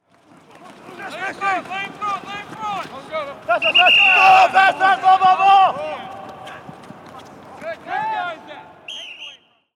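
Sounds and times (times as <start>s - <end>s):
football training: 0.0s - 9.7s.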